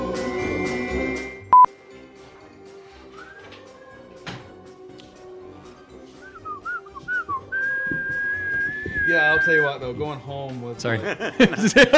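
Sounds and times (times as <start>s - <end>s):
high-pitched whistling with warbling notes and a sustained tone: 0.1s - 1.7s, 3.1s - 4.0s, 6.2s - 9.8s
speech: 9.5s - 11.9s
laughter: 10.9s - 11.9s.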